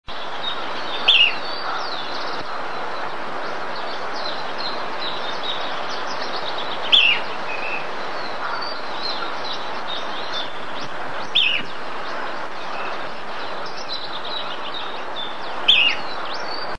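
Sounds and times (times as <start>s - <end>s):
short-billed fiofío calling: 0.2s - 16.7s.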